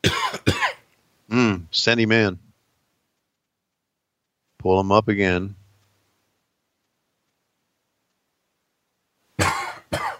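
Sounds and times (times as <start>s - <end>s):
harsh coughs: 0.0s - 0.8s, 9.4s - 10.1s
speech: 1.7s - 2.4s, 4.6s - 5.6s.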